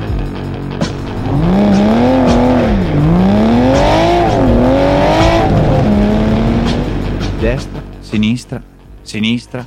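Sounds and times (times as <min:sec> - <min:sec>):
1965 Ford Mustang Fastback engine revving while racing: 0:00.8 - 0:08.0
speech: 0:08.1 - 0:09.6.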